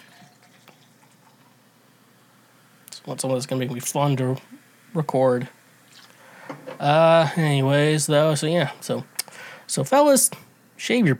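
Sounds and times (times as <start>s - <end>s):
apple ale pouring into a glass: 0.0s - 1.6s
faint fizzing of apple ale: 0.0s - 3.2s, 5.8s - 7.3s
speech: 3.1s - 5.6s, 6.5s - 9.1s, 9.7s - 11.1s.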